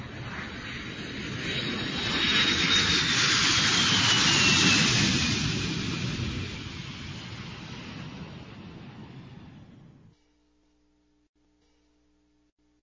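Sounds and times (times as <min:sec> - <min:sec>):
airplane engine roar passing overhead: 0:00.0 - 0:10.1.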